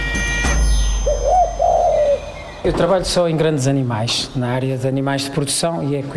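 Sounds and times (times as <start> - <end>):
pigeon cooing: 1.0 - 2.7
speech: 2.6 - 6.1.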